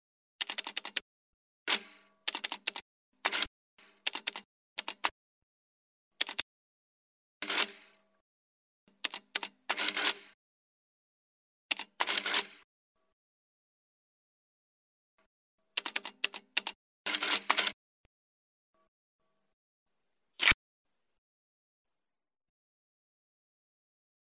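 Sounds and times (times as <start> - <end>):
typing: 0.4 - 1.0, 1.7 - 5.1, 6.2 - 6.4, 9.0 - 10.1, 11.7 - 12.4, 15.8 - 17.8.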